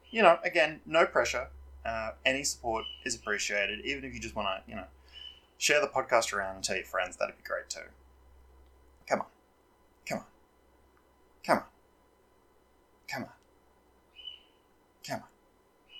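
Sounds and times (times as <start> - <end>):
faint background hum: 0.0 - 15.9
speech: 0.1 - 5.0, 5.6 - 8.0, 9.1 - 9.3, 10.1 - 10.3, 11.4 - 11.7, 13.1 - 13.4, 15.1 - 15.3
pet bird chirping: 2.6 - 5.8, 14.1 - 14.6.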